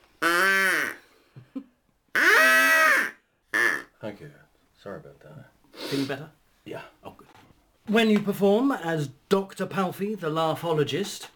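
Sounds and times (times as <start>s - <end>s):
nose blowing: 0.0s - 1.4s, 2.1s - 3.9s
speech: 4.2s - 7.2s, 7.9s - 11.3s
soft sniffs: 5.7s - 6.2s.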